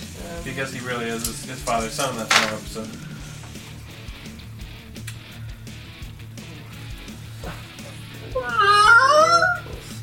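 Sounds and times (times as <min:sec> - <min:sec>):
speech: 0:00.4 - 0:03.2
cat crying at a back door: 0:08.3 - 0:09.8.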